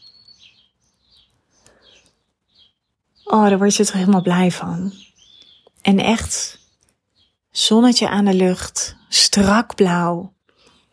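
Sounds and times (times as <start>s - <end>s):
small birds chirping outdoors: 0.0s - 10.9s
speech: 3.3s - 5.1s, 5.9s - 6.6s, 7.6s - 10.4s.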